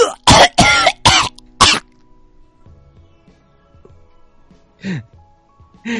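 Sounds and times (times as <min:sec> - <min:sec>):
person coughing in a harsh fit: 0:00.0 - 0:01.8.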